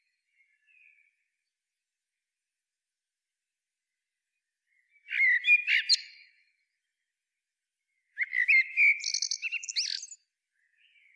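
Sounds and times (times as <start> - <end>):
common blackbird Turdus merula song: 0.0 - 1.4, 4.3 - 7.2, 7.8 - 11.1.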